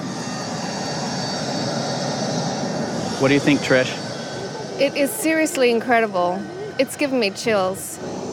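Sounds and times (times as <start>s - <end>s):
airplane passing overhead: 0.0s - 8.3s
speech: 3.2s - 4.0s, 4.8s - 8.2s.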